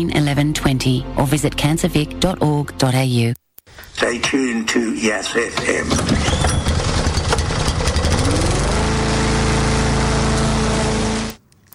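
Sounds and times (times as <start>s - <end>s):
speech: 0.0s - 6.4s
lawnmower engine running: 5.6s - 11.4s.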